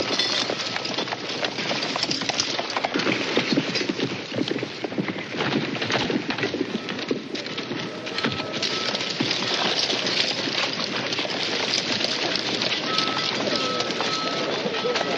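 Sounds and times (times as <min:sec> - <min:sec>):
horses hooves clip-clopping: 0:00.0 - 0:15.1
riders dismounting from saddles: 0:00.0 - 0:15.1.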